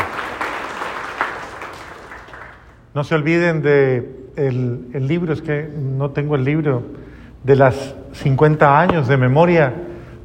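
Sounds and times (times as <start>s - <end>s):
audience clapping for a birthday after a blessing: 0.0s - 2.8s
speech: 2.9s - 10.2s.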